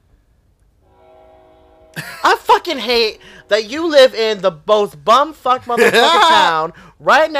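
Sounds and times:
train horn blaring: 0:00.8 - 0:04.4
laughter: 0:02.0 - 0:02.6, 0:05.7 - 0:06.6
speech: 0:02.0 - 0:07.3.

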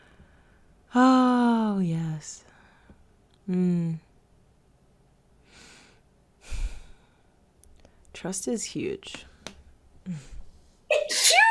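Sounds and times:
speech: 0:00.9 - 0:01.2, 0:01.8 - 0:02.5, 0:03.5 - 0:04.0, 0:08.2 - 0:09.3, 0:10.1 - 0:10.4
sneeze: 0:10.9 - 0:11.4.

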